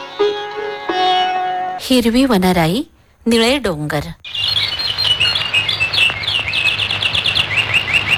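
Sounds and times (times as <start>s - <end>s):
birds chirping and twittering in green woodland among blue hills: 0.0s - 1.8s, 4.2s - 8.1s
speech: 1.9s - 4.4s.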